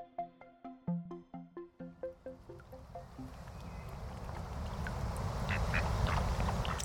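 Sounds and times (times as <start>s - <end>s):
rushing wash of river water: 2.4s - 6.8s
ducks quacking by the River Lagan: 5.4s - 6.8s.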